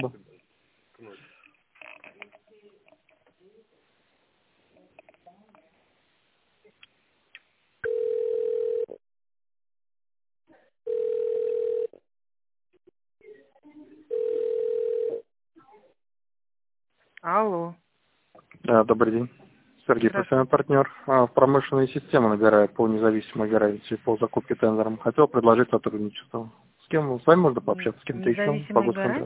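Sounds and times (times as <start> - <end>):
speech: 0.0 - 0.3, 17.2 - 17.8, 18.6 - 29.2
telephone ringback tones while a business call is transferred: 7.8 - 9.0, 10.9 - 11.9, 14.1 - 15.2.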